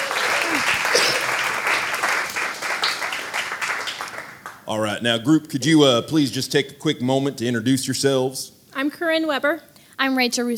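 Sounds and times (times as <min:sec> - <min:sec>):
audience applauding to welcome traveling improv actors: 0:00.0 - 0:04.8
speech: 0:04.7 - 0:10.5.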